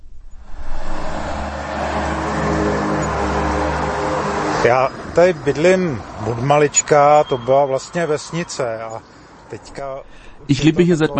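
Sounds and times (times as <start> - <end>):
commuter road traffic in the suburbs of Prague Czech Republic: 0.2 - 10.7
speech: 4.6 - 11.1.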